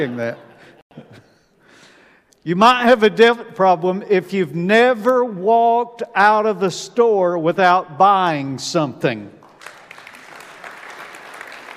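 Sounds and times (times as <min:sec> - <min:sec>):
speech: 0:00.0 - 0:01.3, 0:02.4 - 0:09.4
crowd applauding: 0:09.4 - 0:11.7.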